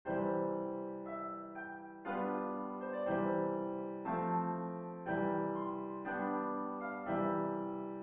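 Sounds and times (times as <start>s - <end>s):
piano sonata in C with chords: 0.1s - 8.0s.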